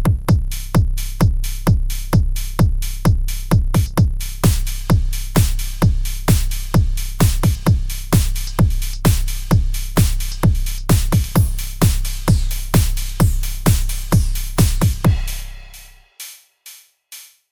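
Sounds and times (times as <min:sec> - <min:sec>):
synthesizer drum patch demo: 0:00.1 - 0:17.3.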